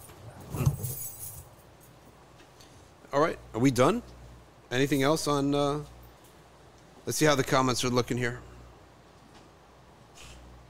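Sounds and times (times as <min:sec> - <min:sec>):
keys jangling as they change hands: 0:00.0 - 0:02.1
speech: 0:03.1 - 0:04.1, 0:04.7 - 0:05.9, 0:07.1 - 0:08.5.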